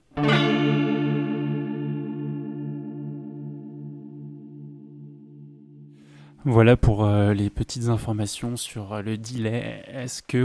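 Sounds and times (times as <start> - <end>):
guitar chord ringing with shimmering chorus effect: 0.0 - 6.4
speech: 6.4 - 10.4.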